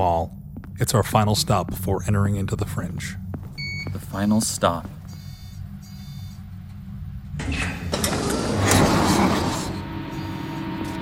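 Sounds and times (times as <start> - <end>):
speech: 0.0 - 3.2, 3.9 - 5.0
heavy door grinding and rumbling shut: 7.4 - 9.9.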